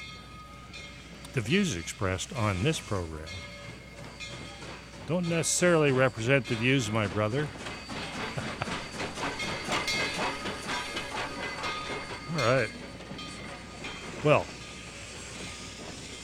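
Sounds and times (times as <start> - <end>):
Amtrak train rumbling with rhythmic clatter of wheels on rails: 0.0 - 16.2
speech: 1.3 - 3.5, 5.1 - 7.7, 12.4 - 12.8, 14.2 - 14.6.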